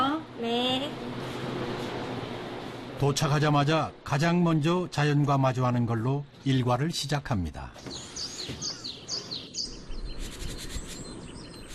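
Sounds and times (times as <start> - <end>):
soft outdoor ambience on a hill in Hamyang South Korea: 0.0 - 11.7
speech: 3.0 - 8.6
birds chirping and trilling on a hill among blooming mountain cherry trees: 7.8 - 11.7.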